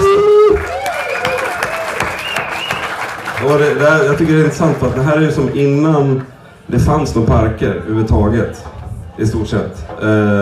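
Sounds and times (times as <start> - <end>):
small group applauding: 0.0 - 5.1
speech: 3.5 - 10.4.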